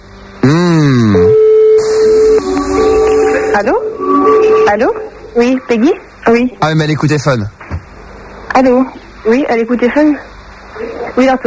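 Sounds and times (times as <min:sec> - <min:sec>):
telephone line tone at the start of an outgoing call: 0:01.2 - 0:05.7
speech: 0:04.7 - 0:07.6, 0:08.6 - 0:10.3, 0:11.2 - 0:11.4.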